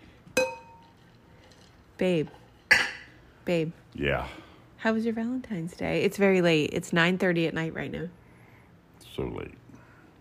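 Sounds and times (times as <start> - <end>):
glasses clinking in a toast: 0.4 - 1.8, 2.6 - 3.1
speech: 2.0 - 2.4, 3.4 - 8.2, 9.2 - 9.6.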